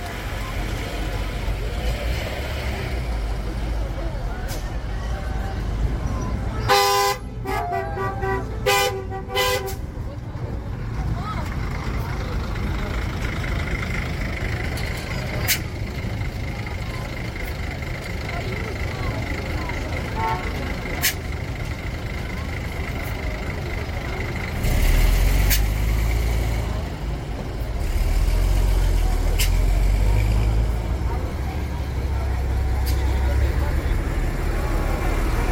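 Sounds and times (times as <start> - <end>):
crowd noise: 0.0 - 35.5
street traffic rumble in Vilnius: 0.0 - 35.5
car horns honking during a car parade in Vilnius: 6.6 - 9.9, 20.1 - 21.2.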